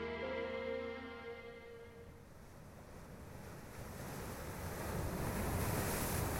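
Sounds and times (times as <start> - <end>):
ocean waves crashing against a boat: 0.4 - 6.3
wind noise: 2.3 - 6.3.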